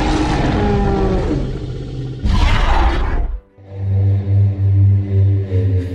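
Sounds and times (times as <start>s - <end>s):
dinosaur-style roar sound effect: 0.0s - 3.5s
deep pulsing rumbling growl: 0.0s - 5.9s.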